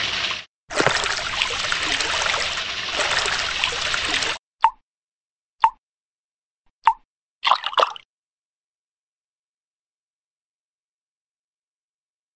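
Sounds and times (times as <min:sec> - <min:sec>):
running water trickling: 0:00.0 - 0:04.4
water drips plopping: 0:00.7 - 0:04.8.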